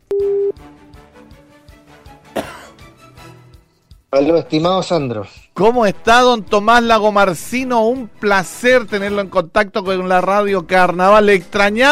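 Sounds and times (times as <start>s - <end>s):
electronic telephone beep as a call is placed on air: 0.1s - 0.6s
speech: 4.1s - 11.9s.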